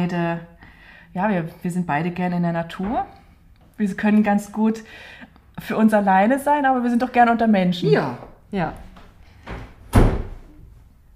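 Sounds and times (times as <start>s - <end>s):
speech: 0.0s - 3.2s, 3.8s - 8.8s
door opening and closing: 9.4s - 10.6s.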